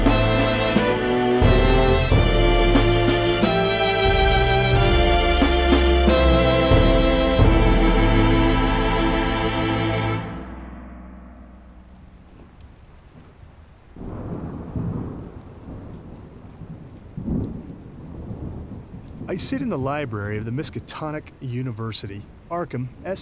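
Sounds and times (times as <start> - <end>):
heavy rain: 0.0 - 10.6, 11.2 - 23.2
thunder: 10.4 - 19.6
speech: 19.4 - 23.2.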